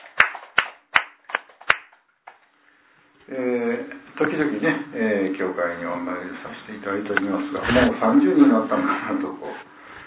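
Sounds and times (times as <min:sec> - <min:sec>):
sparse hand clapping for a 30th birthday at a church gathering: 0:00.0 - 0:02.5
speech: 0:03.3 - 0:09.6.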